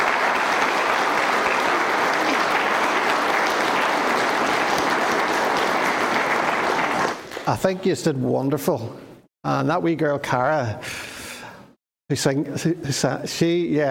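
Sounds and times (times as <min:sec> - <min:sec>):
audience applause: 0:00.0 - 0:07.4
speech: 0:07.5 - 0:11.1, 0:12.1 - 0:13.8.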